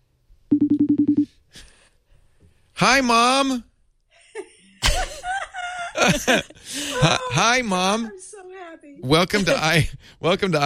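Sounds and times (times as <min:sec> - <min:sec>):
telephone dialing beeps: 0:00.5 - 0:01.2
speech: 0:02.8 - 0:03.7, 0:06.0 - 0:08.2, 0:08.9 - 0:10.6
laughter: 0:04.2 - 0:07.6, 0:09.3 - 0:10.0.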